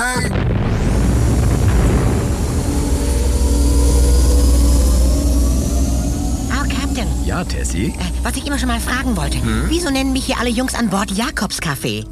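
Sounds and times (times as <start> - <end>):
spaceship nuclear engines roaring at full reverse thrust for landing: 0.6 - 12.1
speech: 7.6 - 12.1.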